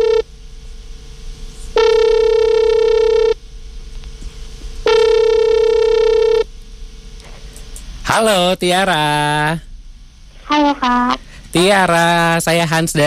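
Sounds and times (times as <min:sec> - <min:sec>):
buzzy telephone ringback tone as a call is placed: 0:01.8 - 0:03.3, 0:04.9 - 0:06.4
speech: 0:08.2 - 0:09.7, 0:10.5 - 0:13.0.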